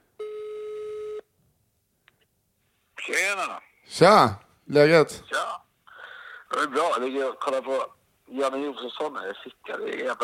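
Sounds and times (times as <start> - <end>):
telephone ringing tone while placing a call: 0.2 - 1.2
speech: 3.1 - 5.6, 6.6 - 10.2.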